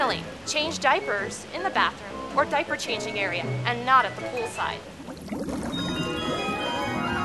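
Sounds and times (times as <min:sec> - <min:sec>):
speech: 0:00.1 - 0:05.7
shower running water: 0:04.9 - 0:07.1.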